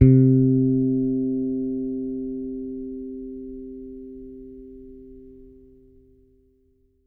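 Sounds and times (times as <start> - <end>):
T-Bird bass guitar C3 note played with fingers: 0.0 - 5.4.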